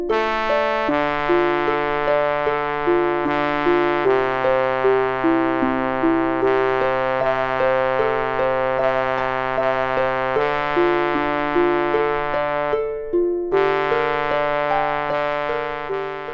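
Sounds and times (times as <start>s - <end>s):
wooden double bass: 0.1s - 12.8s, 13.4s - 16.3s.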